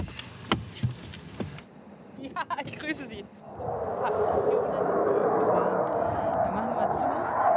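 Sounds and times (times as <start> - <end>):
speech: 2.8 - 4.9
aircraft noise from an airfield heard at a farmhouse: 3.4 - 7.5.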